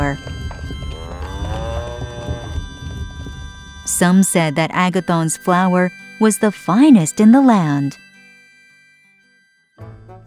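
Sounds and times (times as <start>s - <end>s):
speech: 0.1s - 0.3s, 4.0s - 8.0s
cow mooing: 0.8s - 2.8s.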